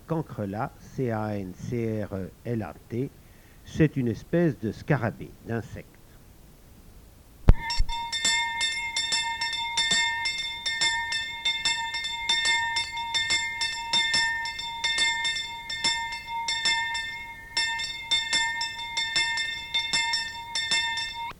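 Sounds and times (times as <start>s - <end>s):
speech: 0.1s - 6.0s
small cracked church bell ringing: 7.6s - 21.3s.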